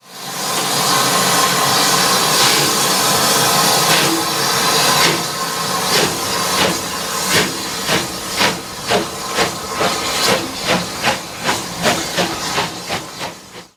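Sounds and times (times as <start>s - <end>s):
rebuilt toilet flushing: 0.0s - 13.7s.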